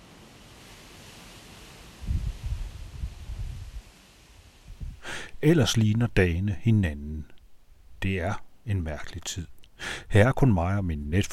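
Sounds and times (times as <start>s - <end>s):
strong wind gusts blowing outside: 2.0s - 3.9s, 4.6s - 5.4s
speech: 5.4s - 7.3s, 8.0s - 11.3s.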